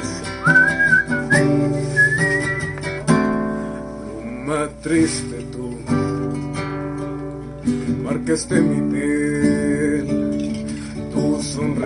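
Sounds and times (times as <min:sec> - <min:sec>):
strummed guitar-like accompaniment: 0:00.0 - 0:11.8
person whistling a tune: 0:00.2 - 0:03.0
speech: 0:04.8 - 0:06.0, 0:08.2 - 0:09.3.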